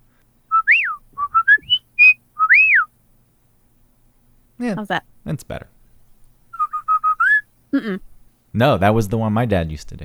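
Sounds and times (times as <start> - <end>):
person whistling a short signal tune: 0.5 - 2.9, 6.6 - 7.4
speech: 4.6 - 5.8, 7.8 - 10.0.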